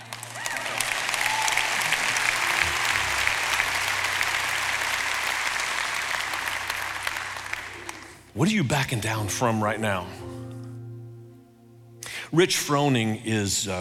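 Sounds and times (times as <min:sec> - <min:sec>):
large crowd applauding indoors: 0:00.0 - 0:08.5
speech: 0:08.4 - 0:10.3, 0:12.3 - 0:13.8.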